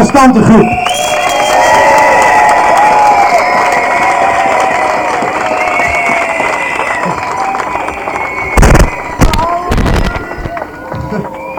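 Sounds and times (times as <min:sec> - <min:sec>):
large crowd applauding: 0:00.0 - 0:11.5
speech: 0:00.2 - 0:01.0
whistles: 0:00.5 - 0:02.3, 0:05.4 - 0:09.3, 0:10.0 - 0:11.5.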